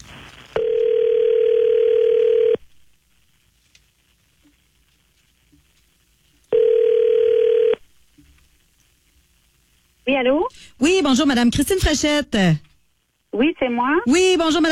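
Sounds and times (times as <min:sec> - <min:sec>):
telephone ringback tone as a call is placed: 0:00.6 - 0:02.6, 0:06.5 - 0:07.8
speech: 0:10.2 - 0:12.7, 0:13.4 - 0:14.7.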